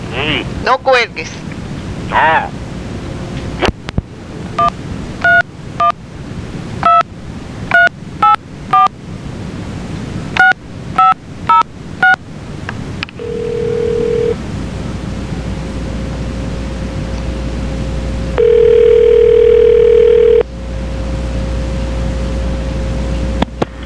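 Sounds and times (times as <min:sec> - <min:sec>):
steady telephone line tones: 0:00.0 - 0:23.8
speech: 0:00.2 - 0:01.5, 0:02.1 - 0:02.6
hissy noisy phone line: 0:04.6 - 0:06.0, 0:06.8 - 0:07.1, 0:07.7 - 0:08.9, 0:10.4 - 0:12.2, 0:13.2 - 0:14.4, 0:18.4 - 0:20.5
longer electronic beep: 0:07.7 - 0:08.9, 0:10.4 - 0:12.2
telephone keypad dialing tones during call transfer: 0:07.7 - 0:08.9, 0:10.4 - 0:12.2, 0:13.2 - 0:14.4, 0:18.4 - 0:20.4.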